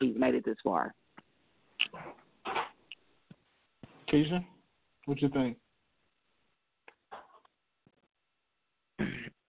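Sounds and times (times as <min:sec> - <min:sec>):
speech: 0:00.2 - 0:01.0, 0:04.1 - 0:04.5, 0:05.1 - 0:05.6
person clearing throat: 0:09.0 - 0:09.4.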